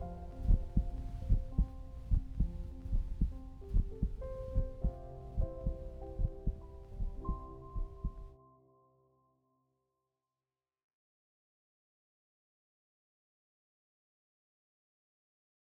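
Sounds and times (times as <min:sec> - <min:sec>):
steady regular heartbeat thumping in deep low pulses: 0:00.0 - 0:08.3.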